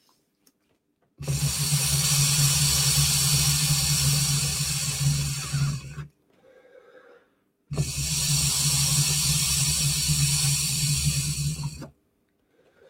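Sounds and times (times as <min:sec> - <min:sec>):
electronic water pipe bubbling hiss while drawing vapor: 0:01.2 - 0:06.1, 0:07.7 - 0:11.9
soft breathing: 0:06.3 - 0:07.5, 0:12.4 - 0:12.8.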